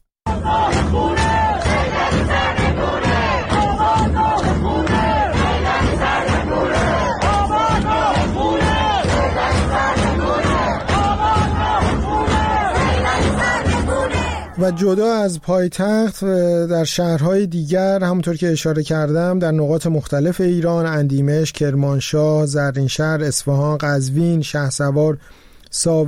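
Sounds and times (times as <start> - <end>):
crowd of protesters chanting slogans in unison in Sadeghieh, Tehran: 0.3 - 15.1
speech: 14.6 - 26.0.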